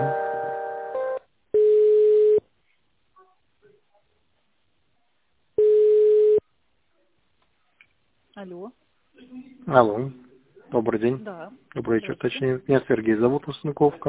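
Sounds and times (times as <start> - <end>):
buzzy telephone line tone while an office call is transferred: 0.0 - 2.4, 5.6 - 6.4
long steady telephone line beeps while an office call is transferred: 1.6 - 2.4, 5.6 - 6.4
speech: 8.4 - 8.9, 9.7 - 14.0.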